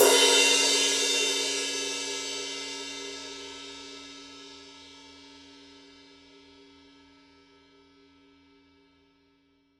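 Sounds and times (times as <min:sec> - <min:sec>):
20-inch rock ride cymbal played on the edge: 0:00.0 - 0:03.6.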